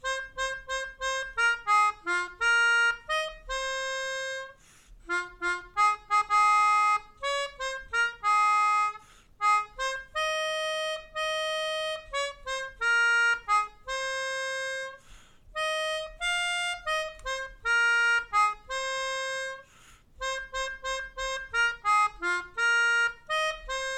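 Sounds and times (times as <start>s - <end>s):
melodica melody: 0.0s - 23.9s.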